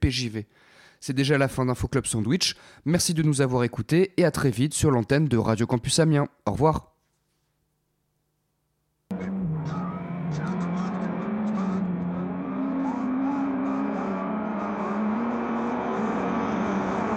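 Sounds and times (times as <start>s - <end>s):
speech: 0.0s - 6.9s
racing car engine from a sim racing video game: 9.1s - 17.1s.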